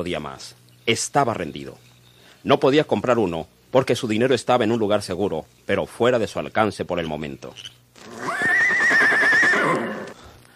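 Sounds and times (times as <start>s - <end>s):
speech: 0.0s - 8.4s
horse whinnying loudly: 8.0s - 10.2s.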